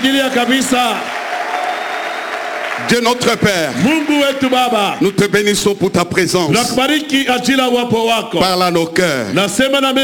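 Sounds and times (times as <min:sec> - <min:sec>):
speech: 0:00.0 - 0:01.1, 0:02.8 - 0:10.0
congregation applauding and cheering during a church worship service: 0:00.0 - 0:06.3.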